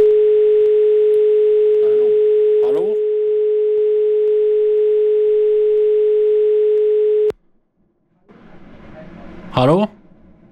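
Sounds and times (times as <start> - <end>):
telephone dial tone after a dropped call: 0.0 - 7.3
low noise: 0.0 - 10.4
speech: 9.6 - 10.0.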